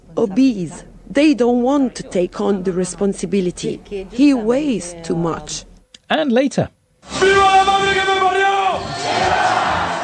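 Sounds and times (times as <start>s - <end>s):
speech: 0.2s - 9.5s
huge crowd in Spain cheering World Cup winners: 7.2s - 10.0s.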